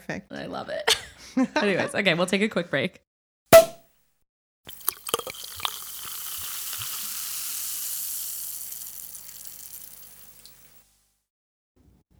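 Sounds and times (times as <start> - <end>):
speech: 0.1 - 3.6
laughter: 0.9 - 2.3
glass clinking: 4.7 - 10.8
sparkling mimosa pouring into glasses: 4.7 - 10.8.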